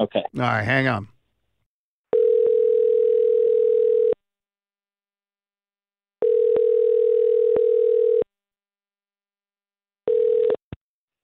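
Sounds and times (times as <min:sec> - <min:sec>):
speech: 0:00.0 - 0:01.1
telephone ringback tone through an earpiece: 0:02.1 - 0:04.2, 0:06.2 - 0:08.2, 0:10.1 - 0:10.6.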